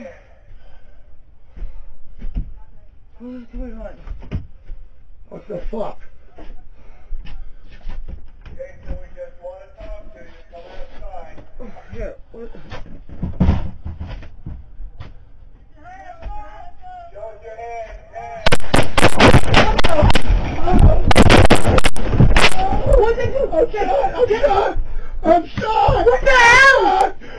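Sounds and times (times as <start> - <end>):
speech: 3.2 - 4.4, 5.3 - 6.6, 23.0 - 27.1
people shouting: 18.4 - 27.2
gunshots during a confrontation on a house deck: 18.5 - 22.8
people screaming and wailing: 19.3 - 24.8.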